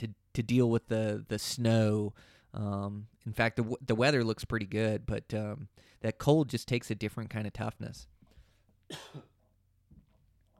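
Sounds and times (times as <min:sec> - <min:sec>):
speech: 0:00.0 - 0:08.1, 0:08.9 - 0:09.3
cough: 0:08.9 - 0:09.4
throat clearing rumble: 0:08.9 - 0:09.4.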